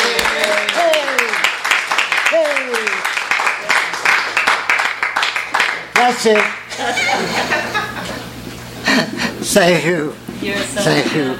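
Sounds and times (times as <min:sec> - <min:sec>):
sliding vocal whoops and cheers: 0:00.0 - 0:01.5, 0:02.2 - 0:03.1
crowd at a bookstore applauding: 0:00.0 - 0:07.3
speech: 0:06.1 - 0:07.9, 0:09.0 - 0:11.3
laughter: 0:06.7 - 0:09.5.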